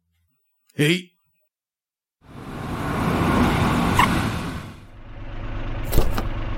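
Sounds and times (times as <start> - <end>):
speech: 0.8 - 1.1
taxi car engine and road noise arriving: 2.2 - 6.5.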